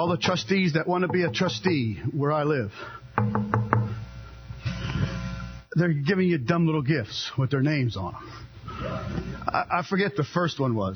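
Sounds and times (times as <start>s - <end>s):
speech: 0.0s - 3.6s, 5.8s - 10.9s
knocking on a door: 1.1s - 1.8s, 3.2s - 4.0s.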